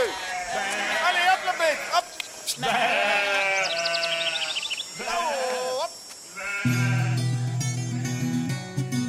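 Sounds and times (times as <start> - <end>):
sheep bleating during a transhumance: 0.0 - 8.9
speech: 6.6 - 7.0.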